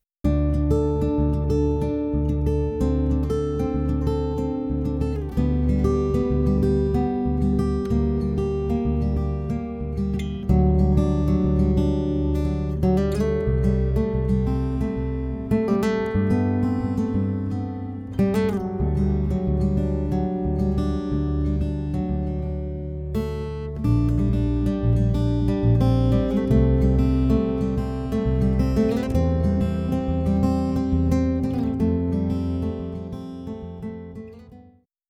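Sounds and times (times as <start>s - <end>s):
acoustic instruments: 0.2s - 34.8s.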